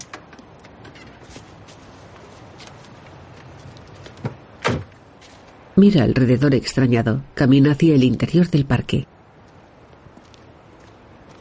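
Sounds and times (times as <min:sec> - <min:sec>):
steady low noise: 0:00.0 - 0:11.3
car door shutting: 0:04.2 - 0:04.9
speech: 0:05.8 - 0:09.1.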